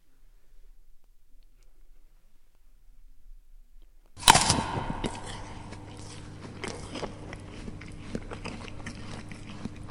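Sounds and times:
faint steady hum: 0.0 - 9.8
teeth biting into an apple: 4.2 - 9.8
wet chewing of an apple: 4.2 - 9.8.

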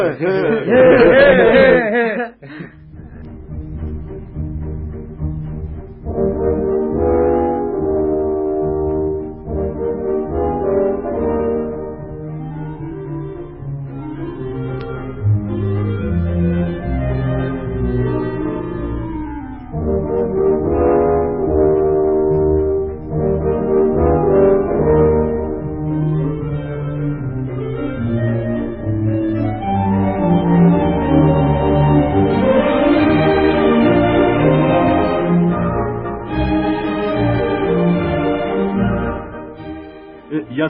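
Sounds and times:
laughter: 0.0 - 3.2
speech: 0.0 - 3.3
dense dissonant modern classical music with low brass-like drones: 0.0 - 40.6.

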